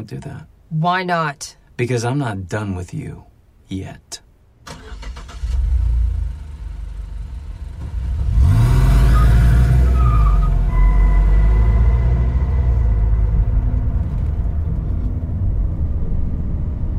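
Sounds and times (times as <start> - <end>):
speech: 0.0 - 4.2
road noise: 4.6 - 16.9
car engine starting, revving and rumbling: 4.7 - 16.9.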